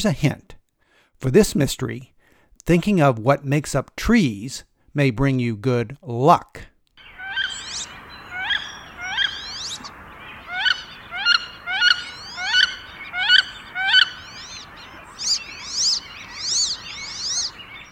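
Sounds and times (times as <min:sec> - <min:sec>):
speech: 0:00.0 - 0:00.5, 0:01.2 - 0:06.7
wood duck calls and whistles: 0:07.0 - 0:17.8.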